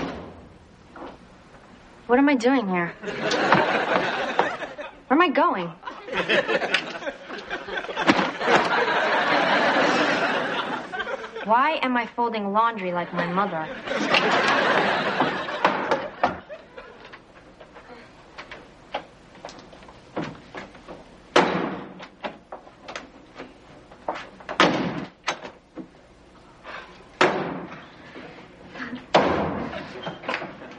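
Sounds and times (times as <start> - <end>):
doors slamming shut: 0.0 - 1.2, 8.0 - 8.9, 15.2 - 16.5, 21.3 - 22.4, 24.5 - 25.6, 27.2 - 27.8, 29.1 - 30.7
speech: 2.1 - 4.3, 5.2 - 9.1, 11.4 - 15.4
laughter: 3.0 - 5.1, 5.8 - 11.5, 13.1 - 17.2, 28.7 - 30.7.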